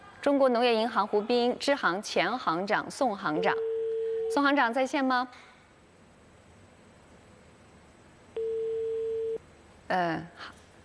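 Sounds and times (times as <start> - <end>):
speech: 0.2 - 3.7, 4.3 - 5.5, 9.9 - 10.6
telephone beeping tone from an unanswered call: 3.5 - 4.4, 8.4 - 9.4.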